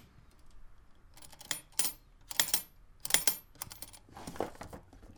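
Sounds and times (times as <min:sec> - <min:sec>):
wardrobe sounds: 0:01.2 - 0:04.7.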